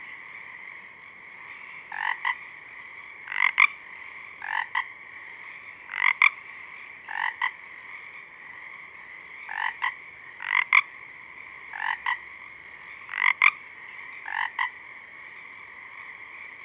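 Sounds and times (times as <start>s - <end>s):
Pacific chorus frogs Pseudacris regilla chorus of overlapping trills at dusk: 0.0s - 16.6s.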